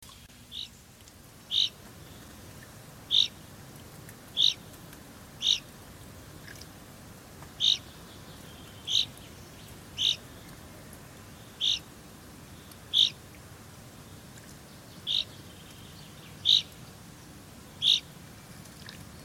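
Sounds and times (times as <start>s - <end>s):
faint steady background hiss: 0.0s - 19.2s
common chaffinch Fringilla coelebs giving short sharp call notes: 3.1s - 3.4s, 4.4s - 4.6s, 5.4s - 5.6s, 8.9s - 9.2s, 10.0s - 10.3s, 11.6s - 11.9s, 12.9s - 13.2s, 17.8s - 18.1s.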